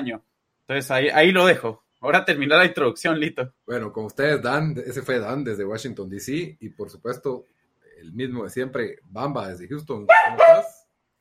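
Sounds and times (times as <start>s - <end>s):
speech: 0.0s - 10.8s
one short sharp dog bark: 10.1s - 10.8s.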